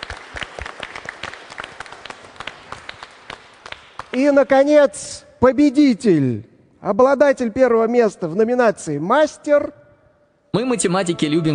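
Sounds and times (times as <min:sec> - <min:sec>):
audience applause: 0:00.0 - 0:04.2
speech: 0:04.2 - 0:09.8, 0:10.5 - 0:11.5.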